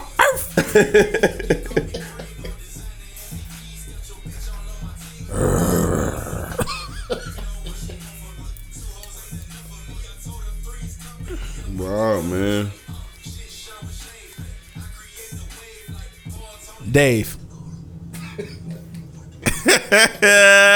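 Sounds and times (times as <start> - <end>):
person imitating a barking dog: 0.0 - 2.4, 5.3 - 6.7, 20.0 - 20.7
laughter: 0.2 - 2.6, 5.3 - 8.1, 18.2 - 20.7
speech: 0.6 - 1.6, 17.0 - 17.4
person making a long rough growling rasp: 5.3 - 6.7.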